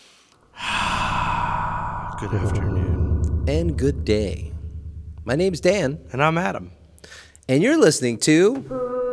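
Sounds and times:
deep airy breath: 0.3 - 5.3, 6.0 - 7.5
speech: 2.2 - 4.5, 5.2 - 9.0.

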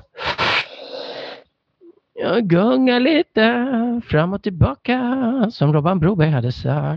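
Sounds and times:
deep breath in close to the microphone: 0.0 - 1.5
speech: 2.2 - 6.9.

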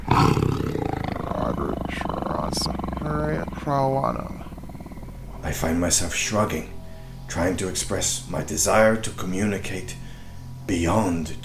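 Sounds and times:
tiger growling: 0.0 - 9.1
speech: 3.1 - 4.4, 5.5 - 10.0, 10.7 - 11.4.

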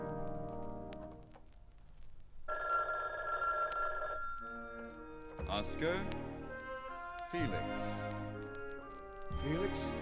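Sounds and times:
telephone ringing with electronic warble: 2.5 - 5.4
soft musical tone: 4.4 - 9.9
speech: 5.5 - 6.3, 7.3 - 8.4, 9.3 - 9.9.

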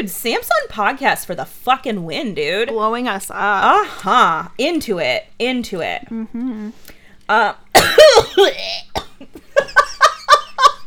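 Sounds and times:
speech: 0.0 - 9.3
person coughing and choking on their own breath: 7.8 - 9.5.

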